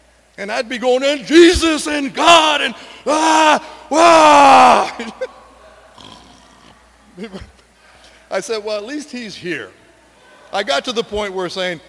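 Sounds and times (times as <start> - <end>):
speech: 0.4 - 5.4, 7.2 - 7.5, 8.3 - 9.8, 10.5 - 11.8
person imitating snoring in a church pew: 6.0 - 6.8.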